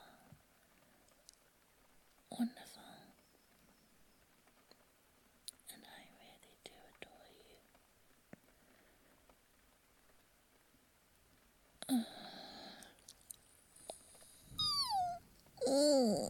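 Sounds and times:
speech: 0:02.3 - 0:02.9
breathy yawns with squeaky voiced tail: 0:14.6 - 0:16.2.

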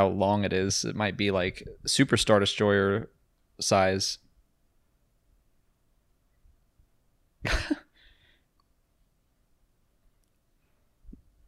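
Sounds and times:
speech: 0:00.0 - 0:04.2, 0:07.4 - 0:07.8
harsh cough trailing into a raspy breath: 0:07.4 - 0:08.0.

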